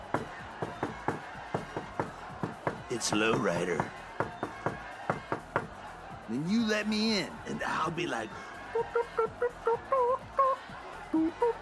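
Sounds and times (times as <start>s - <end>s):
rhythmic knocking on a bathroom door: 0.0s - 5.8s
speech: 2.9s - 4.0s, 6.3s - 10.3s, 11.1s - 11.6s.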